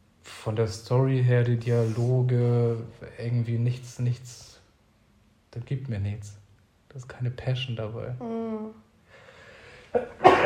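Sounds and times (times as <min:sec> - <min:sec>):
speech: 0:00.4 - 0:04.5, 0:05.5 - 0:08.8, 0:09.9 - 0:10.4
person sneezing: 0:09.9 - 0:10.4.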